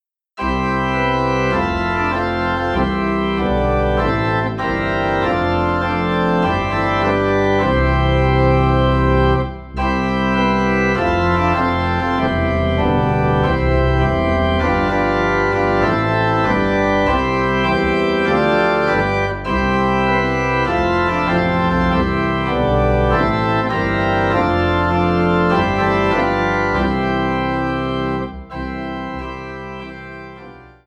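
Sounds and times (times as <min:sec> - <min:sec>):
low organ playing a Christmas carol in C: 0:00.4 - 0:30.8.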